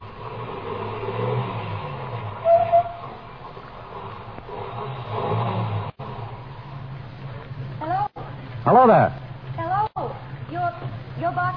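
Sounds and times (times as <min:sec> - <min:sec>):
car engine humming as the car turns around and drives back: 0:00.0 - 0:11.5
speech: 0:08.7 - 0:09.2.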